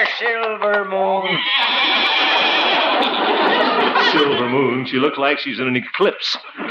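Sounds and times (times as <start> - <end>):
speech: 0.2 - 1.8, 4.8 - 6.6
laughter: 1.2 - 6.6
horse pulling a buggy neighing: 1.3 - 3.2.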